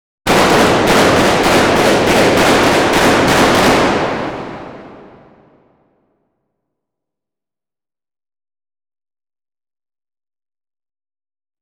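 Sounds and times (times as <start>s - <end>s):
cannons firing: 0.3s - 5.5s
explosions: 0.3s - 5.7s
gunfire: 0.3s - 5.7s.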